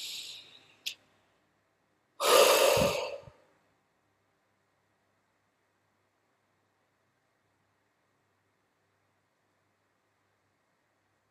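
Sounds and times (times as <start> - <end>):
deep inhalation: 0.0 - 0.7, 2.2 - 3.5
soft breath noise: 0.0 - 0.8, 2.2 - 3.6.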